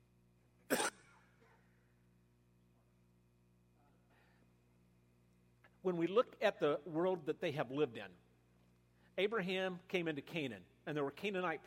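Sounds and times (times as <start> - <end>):
short sharp cough: 0.7 - 1.8
speech: 5.8 - 8.2, 9.2 - 11.6.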